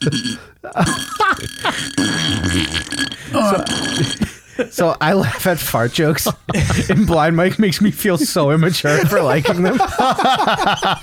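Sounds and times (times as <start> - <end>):
burps echoing inside a beer can: 0.0 - 4.4
speech: 0.0 - 11.0
laughter: 6.0 - 11.0.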